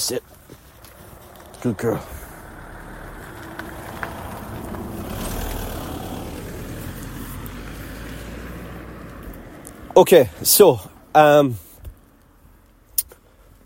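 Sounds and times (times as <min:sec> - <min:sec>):
speech: 0:00.0 - 0:00.6, 0:01.6 - 0:02.2, 0:10.0 - 0:11.6
steady low road noise: 0:00.0 - 0:13.6
car driving past outdoors: 0:01.0 - 0:10.0.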